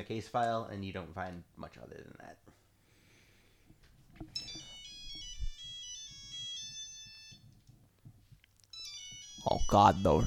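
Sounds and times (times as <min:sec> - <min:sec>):
speech: 0:00.0 - 0:02.6, 0:09.4 - 0:10.2
bright chirping phone ringtone of high electronic tones: 0:04.3 - 0:07.6, 0:08.7 - 0:10.2.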